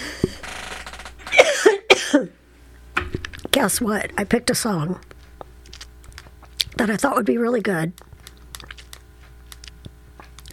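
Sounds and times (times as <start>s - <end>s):
faint low hum: 0.0s - 10.5s
person coughing: 1.3s - 2.4s
speech: 3.6s - 5.1s, 6.8s - 8.0s.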